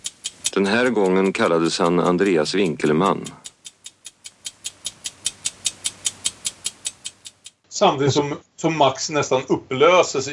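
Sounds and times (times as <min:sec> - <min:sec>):
clock ticking quickly in a film scene: 0:00.0 - 0:07.6
speech: 0:00.6 - 0:03.4, 0:07.8 - 0:10.3.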